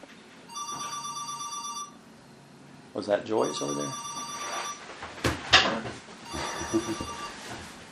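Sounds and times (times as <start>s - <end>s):
mobile phone ringing with a bright electronic tone: 0.5s - 2.0s, 3.4s - 4.8s, 6.2s - 7.6s
speech: 3.0s - 4.0s, 6.7s - 7.3s.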